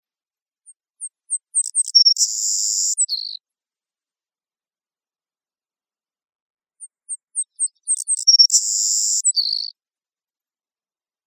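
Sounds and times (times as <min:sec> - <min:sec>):
Savannah sparrow song with buzzy trill in Costa Rica: 0:00.7 - 0:03.4, 0:06.8 - 0:09.8.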